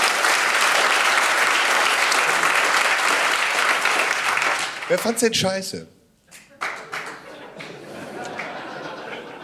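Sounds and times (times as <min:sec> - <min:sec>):
audience at a live show clapping: 0:00.0 - 0:05.4, 0:06.3 - 0:09.4
speech: 0:04.9 - 0:06.0
laughter: 0:06.3 - 0:09.4.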